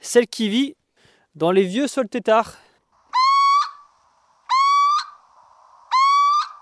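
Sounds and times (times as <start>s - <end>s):
speech: 0.0s - 0.8s, 1.4s - 2.6s
tawny owl calls: 3.1s - 6.5s.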